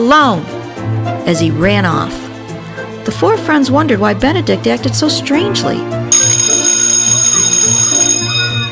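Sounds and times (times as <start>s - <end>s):
speech: 0.0s - 0.7s, 1.3s - 2.3s, 3.1s - 6.4s
electric school bell ringing: 6.1s - 8.7s.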